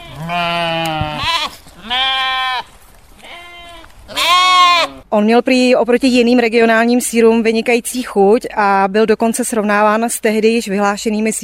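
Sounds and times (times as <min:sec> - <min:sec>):
goats bleating: 0:00.0 - 0:05.0
speech: 0:00.2 - 0:00.5, 0:05.2 - 0:11.4.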